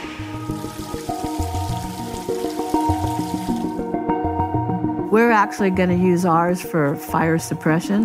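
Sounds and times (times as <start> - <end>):
well water pouring into a large 600-gallon storage tank: 0.0 - 4.0
speech: 5.1 - 8.0.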